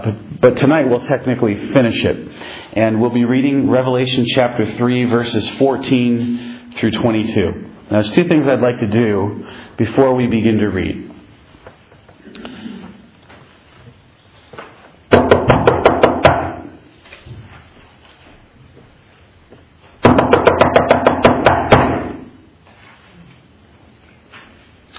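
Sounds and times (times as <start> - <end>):
speech: 0.0 - 11.0
faint noise: 0.0 - 24.9
loud rapid knocking on a door: 15.1 - 16.6, 20.0 - 22.2.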